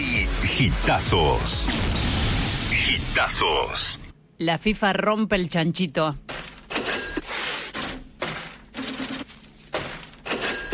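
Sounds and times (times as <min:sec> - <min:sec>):
speech: 0:00.6 - 0:02.0, 0:02.8 - 0:06.2
cash register sound effect with clattering jingling coins and mechanical ratcheting: 0:06.3 - 0:10.7.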